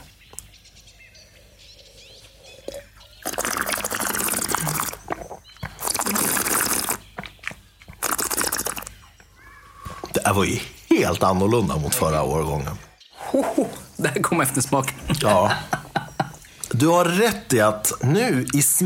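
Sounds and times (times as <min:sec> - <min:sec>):
faint birdsong: 0:00.0 - 0:18.8
noisy slurps of a drink during tasting: 0:01.6 - 0:07.1, 0:07.9 - 0:09.0
speech: 0:10.3 - 0:15.8, 0:16.7 - 0:18.8
laughter: 0:15.0 - 0:16.5.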